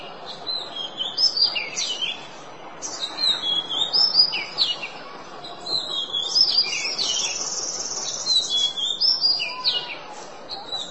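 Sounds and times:
constant background noise: 0:00.0 - 0:10.8
Oriental magpie-robin song with clear whistled phrases: 0:00.5 - 0:02.2, 0:02.8 - 0:04.9, 0:05.7 - 0:10.0.

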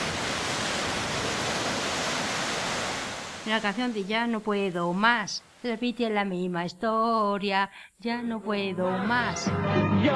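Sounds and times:
sea waves rushing: 0:00.0 - 0:05.6
speech: 0:03.4 - 0:10.1.

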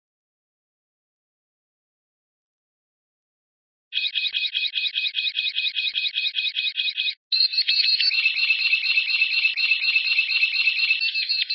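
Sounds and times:
white-rumped shama song: 0:03.9 - 0:11.5.

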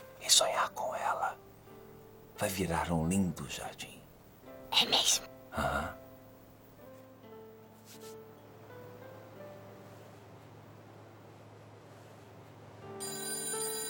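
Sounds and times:
speech: 0:00.3 - 0:01.5, 0:02.4 - 0:04.0, 0:04.7 - 0:06.0
telephone ringing with a steady electronic tone: 0:12.9 - 0:13.8.

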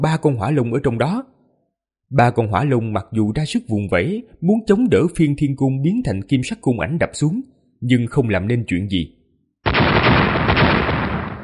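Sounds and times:
speech: 0:00.0 - 0:01.3, 0:02.1 - 0:09.2
huge explosion sound effect with heavy rumbling roar: 0:09.7 - 0:11.4.

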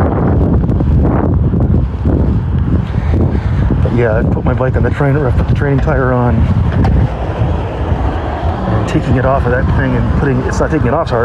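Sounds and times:
wind blowing outdoors buffeting the microphone: 0:00.0 - 0:11.2
speech: 0:04.0 - 0:07.2, 0:08.8 - 0:11.2.

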